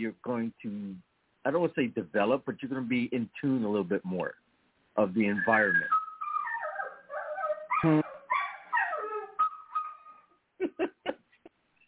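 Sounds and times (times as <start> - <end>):
speech: 0.0 - 4.4, 5.0 - 6.0, 7.8 - 8.1
dog whimpering: 5.3 - 10.3
laughter: 10.6 - 11.3.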